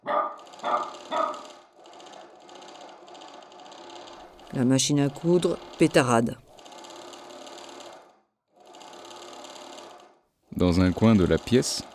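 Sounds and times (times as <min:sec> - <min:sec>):
dog barking: 0:00.0 - 0:01.5
speech: 0:04.5 - 0:06.4, 0:10.6 - 0:11.9.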